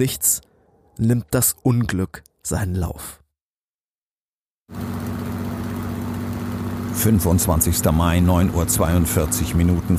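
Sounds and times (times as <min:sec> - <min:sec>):
speech: 0:00.0 - 0:03.2, 0:04.7 - 0:05.0, 0:07.0 - 0:09.9
two airship engines starting and droning about 80 metres above the ground: 0:04.7 - 0:09.9.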